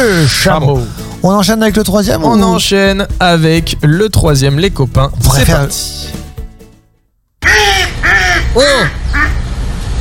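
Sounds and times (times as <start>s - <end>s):
speech: 0.0s - 6.2s, 8.5s - 9.3s
mallard duck quacking: 7.4s - 9.4s.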